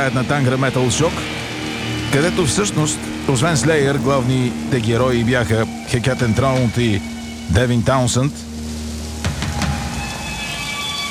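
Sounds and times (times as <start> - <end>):
speech: 0.0 - 1.5, 2.1 - 8.5
steady rain pouring: 0.0 - 11.0.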